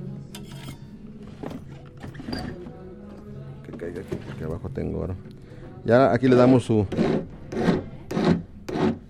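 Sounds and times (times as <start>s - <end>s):
speech: 3.8s - 7.3s
hand file scraping across metal: 6.9s - 9.0s.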